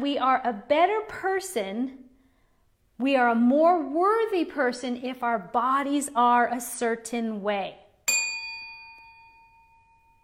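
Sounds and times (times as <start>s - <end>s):
speech: 0.0s - 2.0s, 3.0s - 7.8s
bell struck once: 8.1s - 10.2s.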